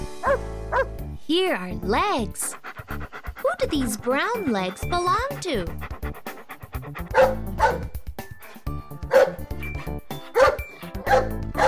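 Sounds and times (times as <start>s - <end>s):
speech: 1.3s - 2.6s, 3.6s - 5.9s, 7.2s - 7.8s
big dog barking: 2.5s - 8.0s, 9.0s - 9.4s, 10.3s - 11.6s.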